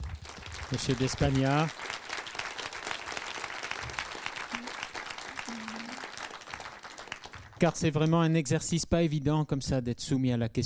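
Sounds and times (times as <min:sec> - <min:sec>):
audience applause: 0:00.0 - 0:08.0
speech: 0:00.7 - 0:01.9, 0:07.6 - 0:10.6.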